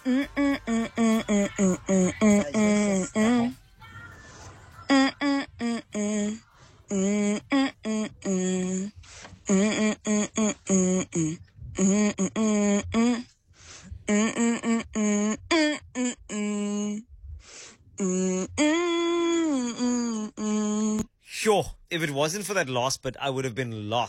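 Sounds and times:
person humming a pop song melody: 0:00.0 - 0:03.6, 0:04.8 - 0:13.3, 0:14.0 - 0:17.1, 0:18.0 - 0:21.1
speech: 0:22.3 - 0:24.0.

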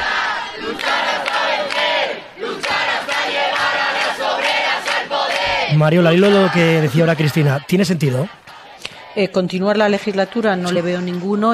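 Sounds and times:
protest crowd shouting and chanting in the streets of Madrid: 0:00.0 - 0:11.5
speech: 0:05.8 - 0:11.5.

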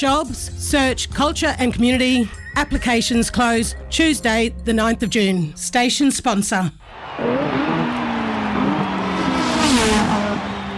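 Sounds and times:
speech: 0:00.0 - 0:07.7
Formula One race car engine roaring past: 0:07.0 - 0:10.7.

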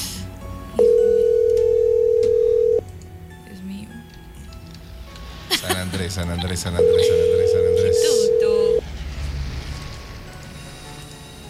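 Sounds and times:
ringback tone on an outgoing phone call: 0:00.8 - 0:02.8, 0:06.8 - 0:08.8
laughter: 0:05.5 - 0:07.7
speech: 0:05.9 - 0:08.6.

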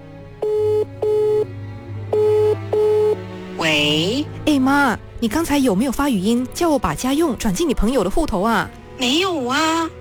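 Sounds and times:
telephone tone bursts as a call is placed: 0:00.4 - 0:01.5, 0:02.2 - 0:03.2
speech: 0:04.6 - 0:09.9.

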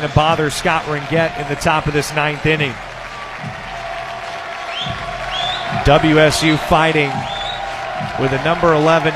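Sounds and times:
speech: 0:00.0 - 0:03.6, 0:05.9 - 0:07.4, 0:08.2 - 0:09.1
large baseball stadium crowd roaring and cheering: 0:00.0 - 0:09.1
shrill rising whistles: 0:04.6 - 0:07.8.

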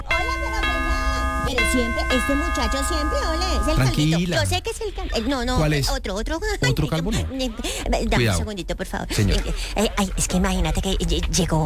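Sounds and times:
doorbell ding-dong chimes: 0:00.0 - 0:04.6
speech: 0:01.5 - 0:11.6.

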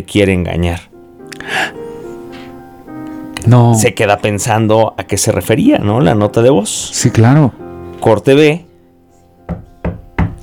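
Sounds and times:
speech: 0:00.0 - 0:00.9, 0:03.4 - 0:08.7
firm knocking on a door: 0:09.5 - 0:10.4.

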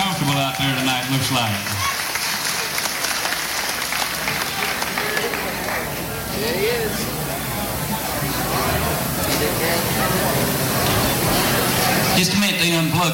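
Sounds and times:
crowd applauding in a big building at night: 0:00.0 - 0:09.3
speech: 0:01.4 - 0:01.7
faint murmuring voices: 0:01.8 - 0:13.1.

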